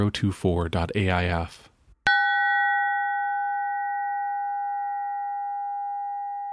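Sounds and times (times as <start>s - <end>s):
speech: 0.0s - 1.7s
monk bell struck once: 2.1s - 6.5s.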